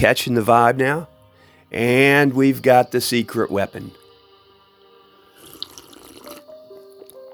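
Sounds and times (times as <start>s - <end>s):
speech: 0.0s - 1.1s, 1.7s - 4.0s
kava tea with milk being poured into a cup: 5.3s - 6.6s.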